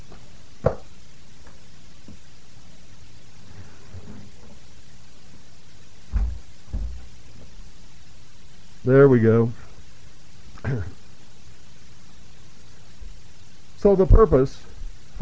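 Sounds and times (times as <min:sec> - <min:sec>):
steady low hiss: 0:00.0 - 0:15.2
door being shut with dull thumps: 0:06.1 - 0:07.0
speech: 0:08.9 - 0:09.6, 0:13.8 - 0:15.2.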